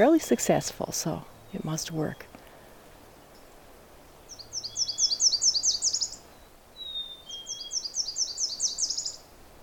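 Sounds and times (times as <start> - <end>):
speech: 0.0 - 2.3
bright rapid warbler song phrases: 0.0 - 9.6.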